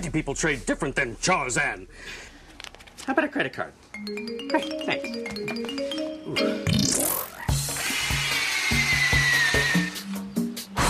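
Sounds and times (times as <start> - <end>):
speech: 0.0 - 2.3, 3.0 - 6.6
cordless drill boring a hole in wood: 7.6 - 10.1.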